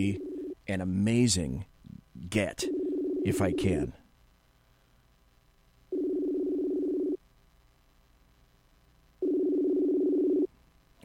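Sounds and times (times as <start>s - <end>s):
cell phone ringing tone over Bluetooth: 0.0s - 0.6s, 2.7s - 3.7s, 5.9s - 7.2s, 9.2s - 10.5s
speech: 0.0s - 4.0s.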